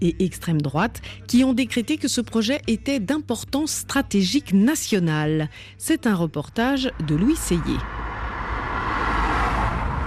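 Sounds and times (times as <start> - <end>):
speech: 0.0 - 8.0
lines of trucks speeding along a highway: 6.8 - 10.0.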